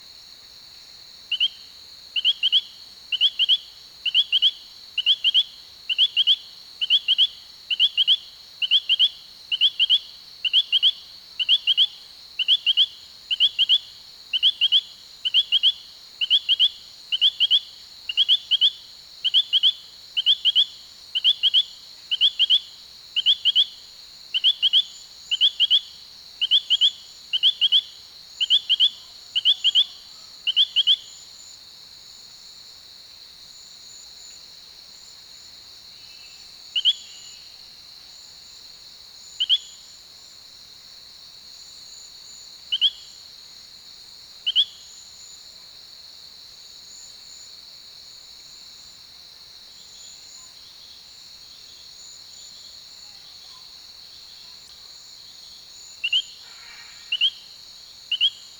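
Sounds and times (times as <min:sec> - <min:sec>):
Allobates femoralis calling: 0:02.2 - 0:23.7, 0:24.4 - 0:31.1, 0:36.1 - 0:37.4, 0:56.0 - 0:57.5, 0:58.1 - 0:58.4.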